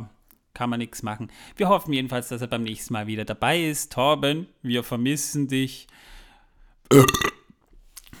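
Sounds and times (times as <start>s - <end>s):
speech: 0.6s - 6.2s, 6.9s - 7.3s
loud wet burp from a person who had drunk a lot: 6.9s - 7.4s.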